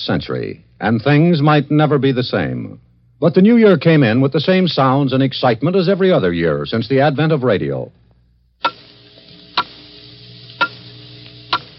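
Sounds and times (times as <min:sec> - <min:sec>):
speech: 0:00.0 - 0:08.0
faint steady hum: 0:00.0 - 0:11.7
clock ticking off the last seconds of the year: 0:10.6 - 0:10.8, 0:11.5 - 0:11.7.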